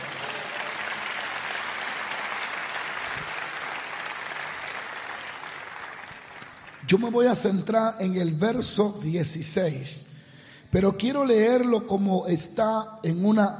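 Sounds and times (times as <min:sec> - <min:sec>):
audience applauding: 0:00.0 - 0:07.0
speech: 0:06.9 - 0:10.1, 0:10.7 - 0:13.5.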